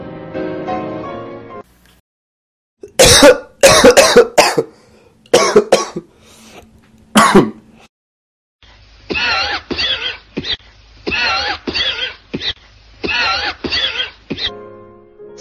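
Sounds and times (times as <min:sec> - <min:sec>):
smoker's harsh phlegmy morning coughing fit on waking: 0:02.8 - 0:06.1, 0:07.2 - 0:07.6, 0:09.1 - 0:14.6.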